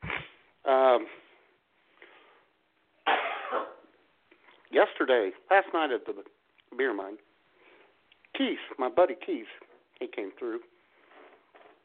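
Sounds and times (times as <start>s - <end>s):
speech: 1.0s - 1.2s, 4.8s - 7.3s, 8.4s - 10.7s
person coughing: 3.0s - 3.9s.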